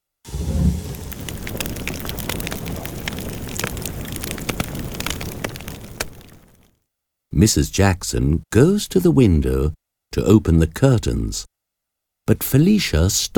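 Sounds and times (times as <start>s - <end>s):
fire just lit crackling in the fireplace of a large room: 0.1s - 6.7s
speech: 7.4s - 11.5s, 12.3s - 13.3s.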